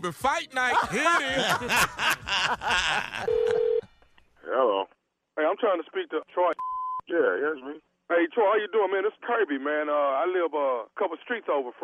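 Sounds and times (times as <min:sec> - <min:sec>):
speech: 0:00.0 - 0:03.6, 0:05.5 - 0:11.8
laughter: 0:00.7 - 0:03.8
telephone tone: 0:03.3 - 0:03.9.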